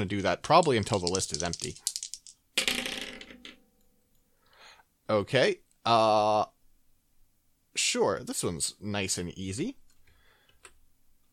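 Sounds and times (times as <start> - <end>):
speech: 0.0 - 1.9, 5.1 - 6.6, 7.8 - 9.8
dice clattering across a hard surface: 0.6 - 3.6.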